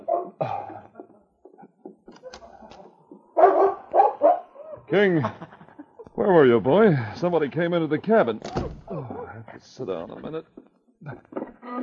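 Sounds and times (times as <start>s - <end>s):
dog barking loudly: 0.0s - 0.4s, 3.4s - 4.9s
speech: 4.9s - 5.5s, 6.3s - 8.8s, 9.8s - 11.2s
laughter: 4.9s - 8.2s.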